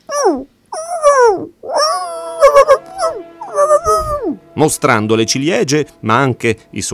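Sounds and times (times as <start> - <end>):
wolf cub howling and yipping: 0.1 - 4.4
speech: 4.6 - 6.9.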